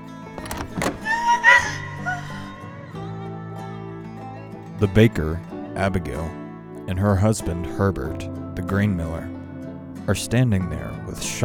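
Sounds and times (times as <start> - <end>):
door swinging open with knocks and clunks: 0.3 - 1.5
high squeaky creak from the door hinge: 0.4 - 1.6
speech: 4.8 - 9.4, 10.1 - 11.4.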